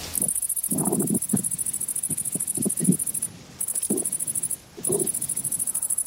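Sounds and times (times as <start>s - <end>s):
grasshopper chirping: 0.0s - 6.0s.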